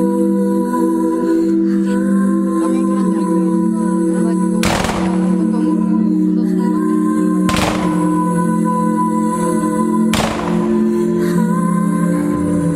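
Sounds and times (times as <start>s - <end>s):
sustained droning tones, possibly music: 0.1s - 12.7s
loud gunshot fired as memorial salute: 4.6s - 5.4s, 7.5s - 8.1s, 10.2s - 10.9s.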